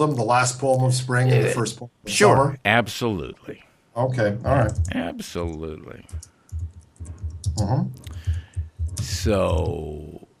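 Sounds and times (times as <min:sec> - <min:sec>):
speech: 0:00.0 - 0:06.3, 0:07.6 - 0:08.1, 0:09.0 - 0:10.1
typing on a computer keyboard: 0:06.1 - 0:09.1.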